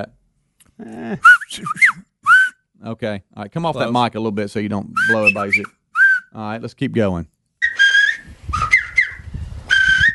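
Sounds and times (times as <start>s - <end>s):
speech: 0.8s - 2.1s, 2.8s - 7.3s
grandmother whistling bird calls into a microphone: 2.2s - 2.6s, 5.0s - 6.3s, 7.6s - 10.1s.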